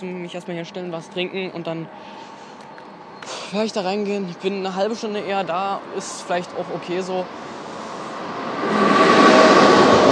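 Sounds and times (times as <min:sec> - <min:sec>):
speech: 0:00.0 - 0:02.4, 0:03.5 - 0:07.6
freight train rolling over rails: 0:07.7 - 0:10.1.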